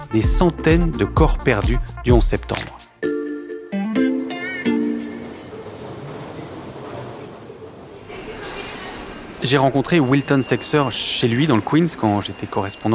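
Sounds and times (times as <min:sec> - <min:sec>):
speech: 0:00.1 - 0:02.8, 0:09.5 - 0:12.9
elevated subway train cars rumbling on the track in Queens, New York: 0:04.7 - 0:12.9
shrill wheel squeals of an elevated subway train in Queens, New York: 0:04.7 - 0:12.9.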